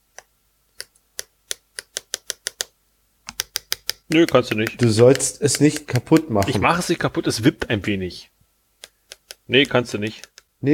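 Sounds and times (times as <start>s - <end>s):
pen with retracted tip tapping on a new device: 0.8s - 6.6s, 8.8s - 10.5s
speech: 4.1s - 8.3s, 9.5s - 10.7s.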